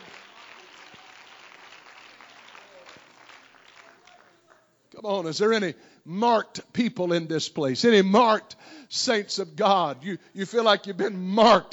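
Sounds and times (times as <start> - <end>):
crowd applauding in praise: 0.0 - 4.6
speech: 5.0 - 11.7.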